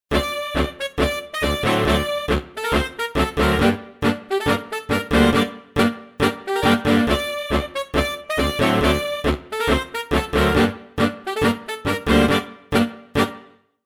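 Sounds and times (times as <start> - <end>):
mixed saxophone section montage: 0.1 - 13.6.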